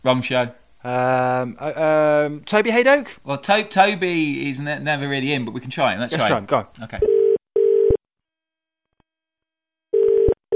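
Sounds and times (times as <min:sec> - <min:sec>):
speech: 0:00.0 - 0:07.1
electronic ringing tone of a call to a mobile phone: 0:07.1 - 0:08.0, 0:09.9 - 0:10.5.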